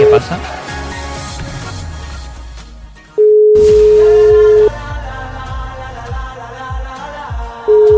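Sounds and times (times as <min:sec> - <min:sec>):
rhythmic music: 0:00.0 - 0:07.9
speech: 0:00.2 - 0:00.6
phone ringback tone during an outgoing call by a radio host: 0:03.2 - 0:04.7.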